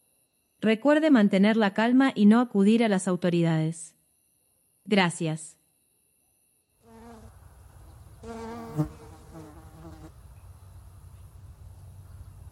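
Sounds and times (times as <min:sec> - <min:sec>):
speech: 0:00.6 - 0:04.0, 0:04.9 - 0:05.6, 0:08.2 - 0:09.0
albino fly of Lake Texcoco buzzing: 0:06.8 - 0:10.3.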